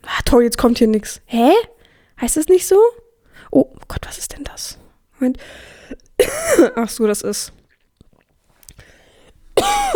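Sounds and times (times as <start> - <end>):
speech: 0.3 - 7.6
person coughing lightly: 6.2 - 6.8, 9.6 - 9.9
person giving a loud voiced throat clear: 9.6 - 9.9.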